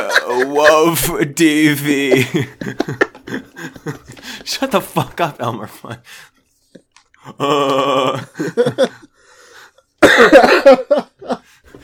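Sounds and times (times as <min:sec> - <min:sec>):
laughter: 0:00.0 - 0:06.0, 0:07.2 - 0:09.2, 0:10.0 - 0:11.6
speech: 0:00.0 - 0:06.3, 0:07.2 - 0:09.1, 0:10.1 - 0:11.4
man coughing: 0:10.0 - 0:10.9.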